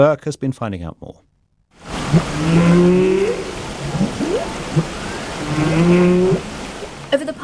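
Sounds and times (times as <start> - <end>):
speech: 0.0 - 1.3, 2.1 - 4.0, 5.6 - 6.4, 7.1 - 7.4
humpback whale calls off the coast of Iceland: 1.8 - 7.4
steady underwater watery hiss: 1.8 - 7.4.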